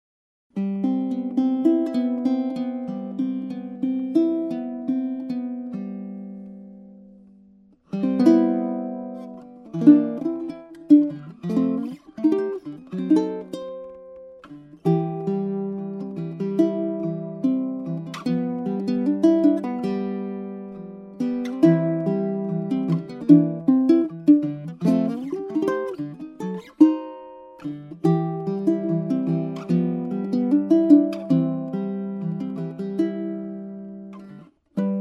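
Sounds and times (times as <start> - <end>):
ukulele playing: 0.6 - 34.9.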